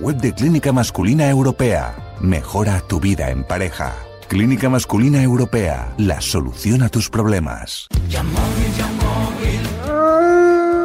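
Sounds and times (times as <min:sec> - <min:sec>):
speech: 0:00.0 - 0:09.4
wolf howling: 0:09.8 - 0:10.8.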